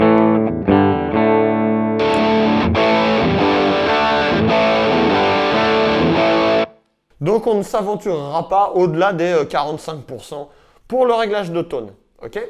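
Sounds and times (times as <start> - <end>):
electric guitar ringing clean chords: 0.0 - 6.8
speech: 7.2 - 12.4.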